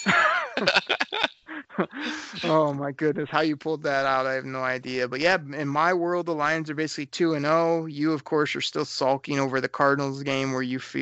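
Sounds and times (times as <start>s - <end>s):
speech: 0.0s - 1.0s, 1.8s - 11.0s
bright ringing bell: 0.0s - 1.3s
laughter: 0.0s - 6.6s.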